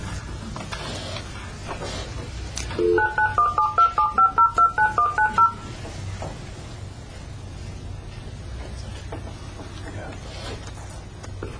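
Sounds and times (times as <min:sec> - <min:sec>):
telephone keypad dialing tones: 0:02.8 - 0:05.7.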